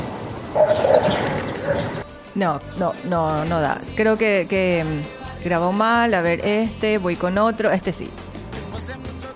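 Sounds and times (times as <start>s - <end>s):
dogs barking: 0.5s - 2.1s
speech: 2.4s - 8.3s.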